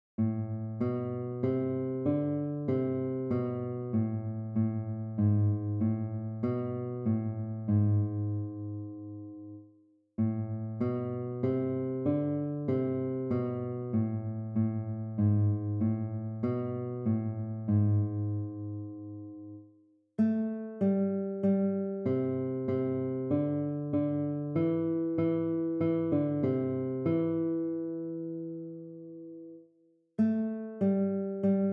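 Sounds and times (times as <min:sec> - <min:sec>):
minor scale melodies: 0:00.2 - 0:31.7.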